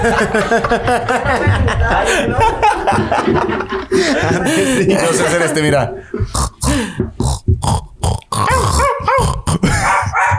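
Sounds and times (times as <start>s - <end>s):
laughter: 0.0s - 7.0s, 9.6s - 10.3s
speech: 0.0s - 7.0s
person imitating a dog with barks, growls and yelping whines: 6.4s - 10.3s.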